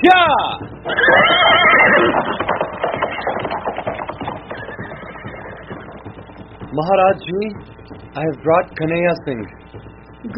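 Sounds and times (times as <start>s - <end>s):
horse hoofbeats clip-clopping: 0.0s - 10.3s
horse letting out a loud shrill whinny: 0.8s - 6.1s
speech: 6.8s - 10.3s.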